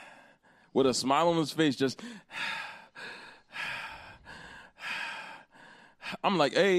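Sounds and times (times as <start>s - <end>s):
person imitating heavy creepy breathing: 0.0s - 0.8s, 2.0s - 6.2s
speech: 0.7s - 2.7s, 6.2s - 6.7s.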